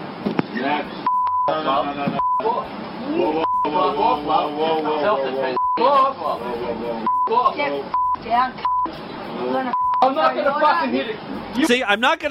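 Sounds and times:
speech: 0.8s - 12.2s
censor bleeps masking swear words: 1.1s - 1.6s, 2.2s - 2.6s, 3.3s - 4.0s, 5.6s - 6.0s, 7.0s - 9.0s, 9.7s - 10.1s.

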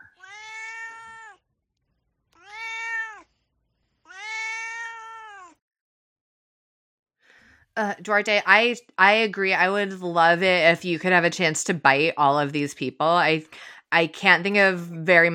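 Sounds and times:
pet cat meowing: 0.1s - 1.4s, 2.4s - 3.3s, 4.1s - 5.6s
speech: 7.8s - 15.3s.

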